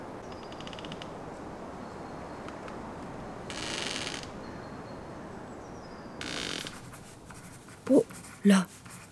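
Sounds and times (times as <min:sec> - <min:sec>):
steady low hiss: 0:00.0 - 0:09.1
pen scratching across paper: 0:06.8 - 0:09.1
speech: 0:07.9 - 0:08.8.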